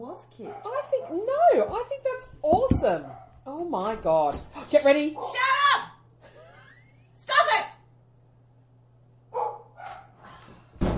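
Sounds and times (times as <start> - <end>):
speech: 0.2 - 5.6
dog barking: 0.4 - 1.4, 3.0 - 3.4, 5.2 - 5.4, 9.3 - 10.2.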